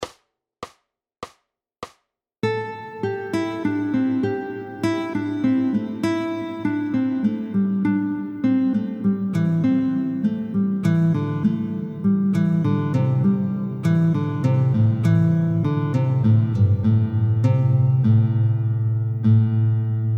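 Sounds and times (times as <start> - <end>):
guitar sequencing exercise: 2.4 - 20.1.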